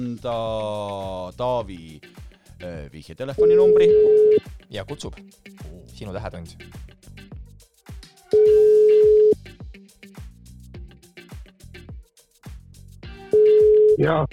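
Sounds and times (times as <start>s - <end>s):
speech: 0.0s - 6.8s, 14.0s - 14.3s
rhythmic music bed: 0.0s - 14.3s
telephone ringback tone: 3.4s - 4.4s, 8.4s - 9.4s, 13.3s - 14.1s.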